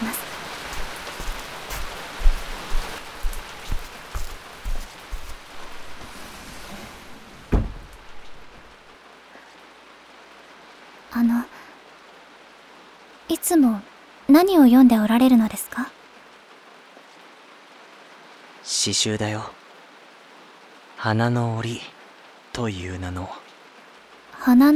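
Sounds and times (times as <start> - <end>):
steady rain pouring: 0.0 - 24.7
brief thud: 6.6 - 8.7
sharp knock: 7.5 - 8.0
speech: 13.5 - 15.8, 18.8 - 19.6, 21.0 - 22.0, 22.6 - 23.4, 24.4 - 24.7.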